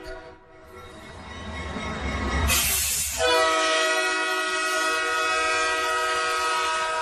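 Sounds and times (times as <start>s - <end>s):
commuter train rumbling past a station: 0.0s - 7.0s
commuter train horn blast: 2.5s - 7.0s.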